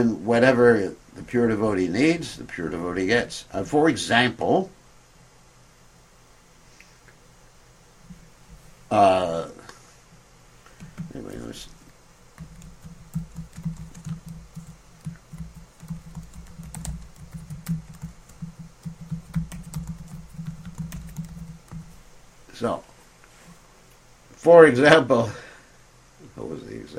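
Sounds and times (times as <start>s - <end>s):
speech: 0.0s - 4.8s, 8.9s - 9.6s, 11.2s - 11.8s, 22.6s - 22.9s, 24.4s - 25.4s, 26.4s - 26.9s
typing on a computer keyboard: 10.8s - 11.5s, 12.4s - 22.0s.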